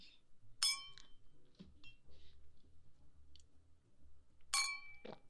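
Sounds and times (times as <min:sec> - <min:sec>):
glasses clinking in a toast: 0:00.6 - 0:01.1, 0:04.5 - 0:05.0.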